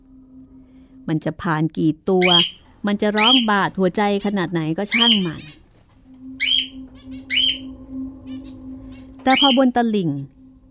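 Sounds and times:
steady low hum: 0:00.0 - 0:10.7
speech: 0:01.1 - 0:05.6, 0:09.2 - 0:10.4
barn owl screeching while flying past: 0:02.2 - 0:03.6, 0:04.8 - 0:05.6, 0:06.4 - 0:09.8.

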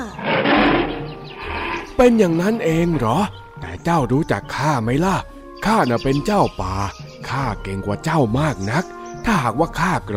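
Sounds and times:
tiger roaring: 0:00.0 - 0:03.2
speech: 0:02.0 - 0:10.1.

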